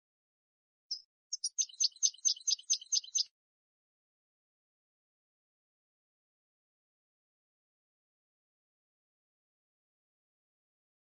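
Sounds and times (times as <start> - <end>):
European goldfinch song with buzzy jingling chirps: 0.9 - 3.4.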